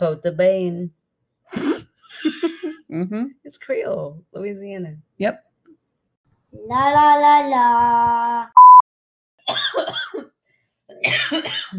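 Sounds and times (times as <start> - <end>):
speech: 0.0 - 5.5, 6.5 - 8.6, 10.9 - 11.7
short electronic beep: 8.6 - 8.8
raspy coughing with throaty hacks: 9.4 - 11.7.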